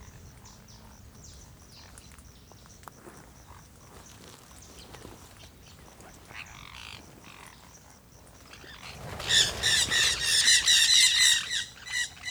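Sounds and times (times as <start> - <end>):
flock of Jandaya parakeets squawking harshly: 9.2 - 12.2.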